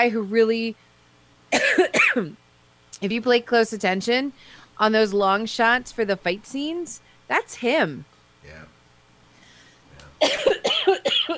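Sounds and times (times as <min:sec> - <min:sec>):
speech: 0:00.0 - 0:00.9, 0:01.5 - 0:02.4, 0:03.0 - 0:08.6, 0:10.2 - 0:10.6
smoker's harsh rasping cough: 0:01.5 - 0:02.4, 0:10.2 - 0:11.3.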